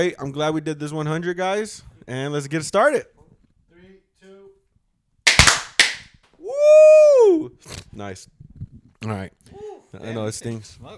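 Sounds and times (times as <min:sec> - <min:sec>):
speech: 0:00.0 - 0:03.2, 0:07.3 - 0:08.4, 0:09.0 - 0:10.9
party poppers popping: 0:05.3 - 0:06.1.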